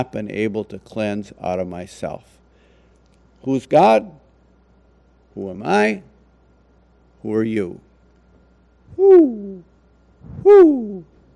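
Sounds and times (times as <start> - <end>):
speech: 0.0 - 2.4, 3.4 - 4.2, 5.4 - 6.1, 7.2 - 7.9, 8.9 - 11.1
owl hooting: 8.9 - 11.2.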